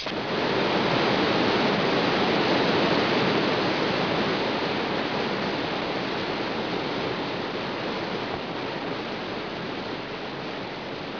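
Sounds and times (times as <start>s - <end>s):
water in nature: 0.0s - 11.1s.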